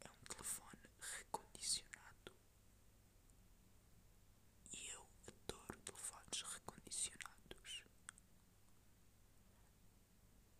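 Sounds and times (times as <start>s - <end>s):
person whispering into microphone in exaggerated breathy ASMR style: 0.0s - 2.4s, 4.7s - 8.2s.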